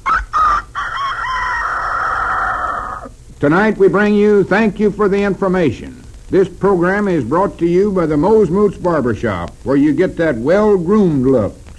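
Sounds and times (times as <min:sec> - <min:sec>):
man imitating a rooster crowing: 0:00.0 - 0:03.1
speech: 0:03.4 - 0:11.6.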